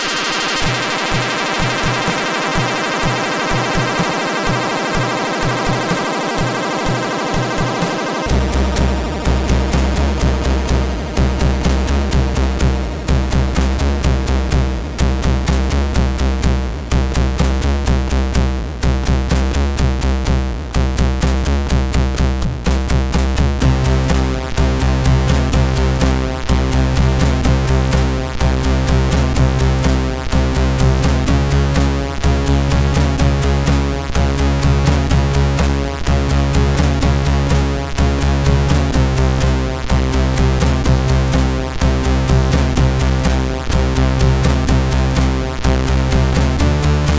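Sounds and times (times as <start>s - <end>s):
SID chiptune music on a CSG8580R5 chip: 0.2s - 47.1s.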